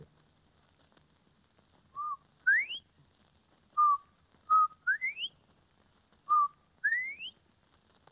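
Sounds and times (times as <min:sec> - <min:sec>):
woman whistling an imitation of a bobwhite quail call: 0:02.0 - 0:02.8, 0:03.8 - 0:05.3, 0:06.3 - 0:07.3.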